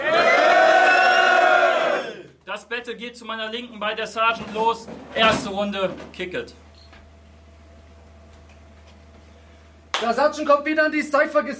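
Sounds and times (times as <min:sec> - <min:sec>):
large crowd cheering and shouting: 0:00.0 - 0:02.3
speech: 0:02.8 - 0:06.6, 0:10.0 - 0:11.5.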